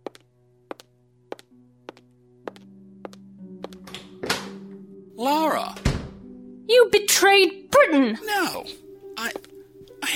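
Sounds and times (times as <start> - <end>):
footsteps walking across room: 0.0 - 4.8
speech: 6.9 - 9.4.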